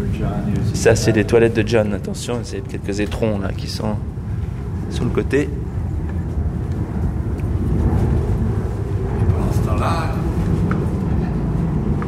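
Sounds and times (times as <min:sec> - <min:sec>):
speech: 0:00.0 - 0:04.2, 0:04.9 - 0:05.7
private jet aircraft engines roaring: 0:00.0 - 0:12.0.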